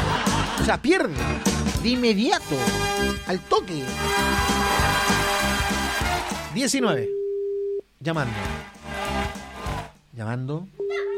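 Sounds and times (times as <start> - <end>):
laughter: 0.0 - 1.6
speech: 0.6 - 7.2, 8.0 - 8.8, 10.2 - 10.9
steady telephone call tone while a number is dialed: 7.0 - 7.8.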